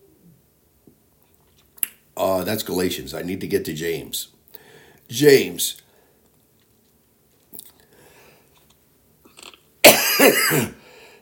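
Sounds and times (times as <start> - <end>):
speech: 2.2 - 4.4, 5.1 - 5.8
person coughing harshly: 9.8 - 10.8.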